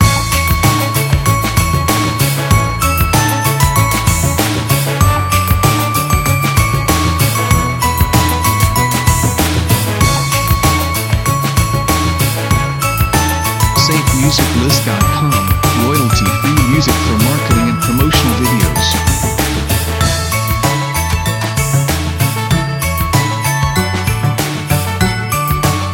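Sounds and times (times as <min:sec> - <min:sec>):
Christmas music loop: 0:00.0 - 0:25.9.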